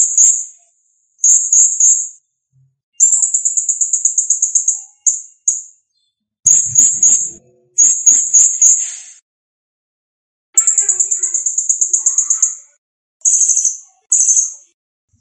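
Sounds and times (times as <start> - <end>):
blue-crowned hanging parrot singing high chirps and trills: 1.2 - 2.3, 3.0 - 9.0, 10.6 - 15.1.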